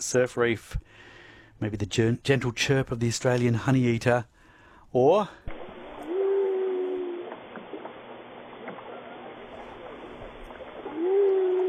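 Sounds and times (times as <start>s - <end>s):
speech: 0.1s - 5.5s
water noise: 5.4s - 11.6s
whale calls off Albany: 5.6s - 11.6s.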